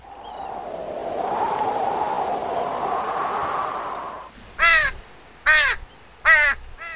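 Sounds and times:
rushing surf or wind on an open beach: 0.0 - 6.9
seagulls squawking over a beach: 4.4 - 6.9.

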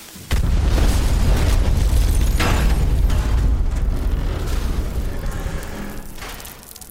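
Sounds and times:
pipe bomb explosion in a video game: 0.3 - 6.6.

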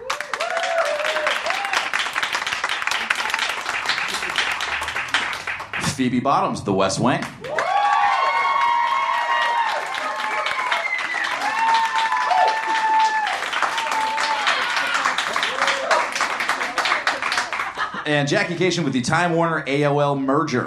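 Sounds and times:
cheers and high-pitched whoops: 0.0 - 2.1, 3.0 - 3.7, 7.4 - 17.2
large audience clapping: 0.0 - 6.1, 7.2 - 18.7
speech: 6.0 - 7.5, 18.1 - 20.6
laughter: 14.5 - 18.7.

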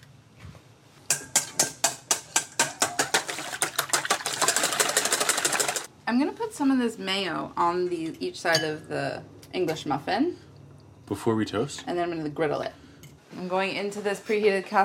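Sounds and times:
eggs whisked in a bowl: 1.2 - 5.9
speech: 6.6 - 10.4, 11.1 - 14.8.

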